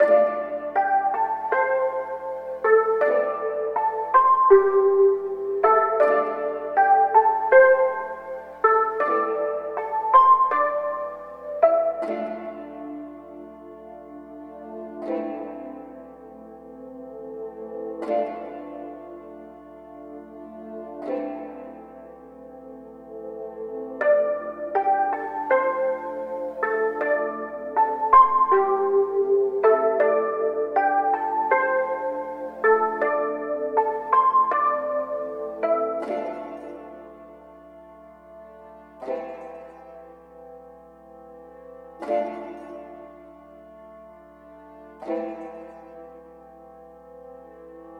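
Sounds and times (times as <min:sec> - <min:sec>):
melodic loop in D minor: 0:00.0 - 0:16.1, 0:24.0 - 0:37.6.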